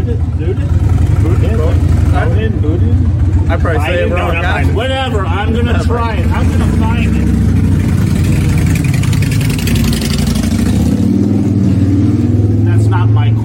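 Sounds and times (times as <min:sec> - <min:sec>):
motorbike engine rumbling past: 0:00.0 - 0:13.3
speech: 0:03.5 - 0:07.4.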